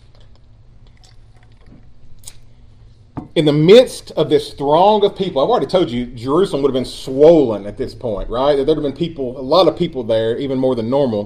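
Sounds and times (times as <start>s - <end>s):
preacher drinking water during sermon: 0.0s - 2.7s
low steady room hum: 0.0s - 11.2s
speech: 3.4s - 11.2s.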